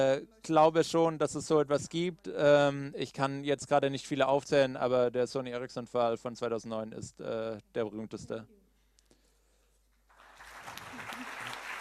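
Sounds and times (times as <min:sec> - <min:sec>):
speech: 0:00.0 - 0:08.6
audience applause: 0:10.1 - 0:11.8.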